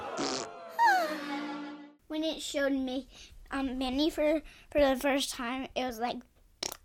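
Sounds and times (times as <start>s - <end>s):
six-year-old child blowing a wet buzzing raspberry imitating a farting noise: 0.2s - 1.1s
speech: 2.4s - 6.3s.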